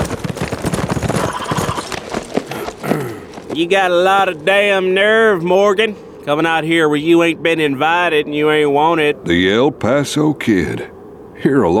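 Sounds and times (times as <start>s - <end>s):
horse hooves clip-clopping as a rider approaches a ranch house gate: 0.0s - 6.6s
speech: 3.6s - 11.7s.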